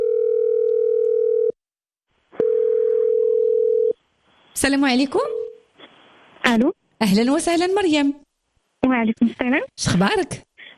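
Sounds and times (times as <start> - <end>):
telephone ringing as a call is placed: 0.0 - 1.6, 2.4 - 4.0
speech: 4.6 - 5.4, 6.4 - 8.2, 8.8 - 10.5.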